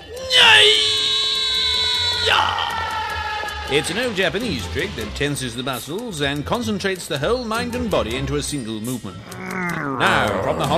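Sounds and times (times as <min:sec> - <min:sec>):
high-pitched martial arts shout: 0:00.1 - 0:03.7
speech: 0:03.7 - 0:10.7.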